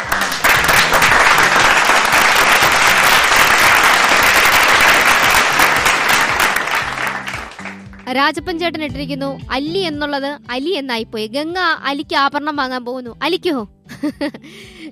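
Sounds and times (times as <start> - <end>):
audience applause: 0.0 - 8.0
speech: 8.2 - 14.8.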